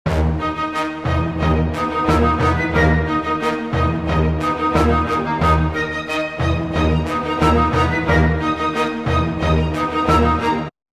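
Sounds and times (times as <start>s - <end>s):
dramatic music: 0.1s - 10.7s.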